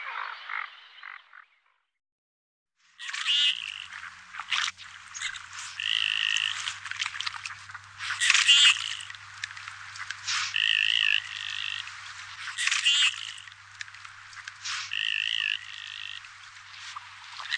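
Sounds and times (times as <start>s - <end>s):
common goldeneye croaking: 3.0s - 17.5s.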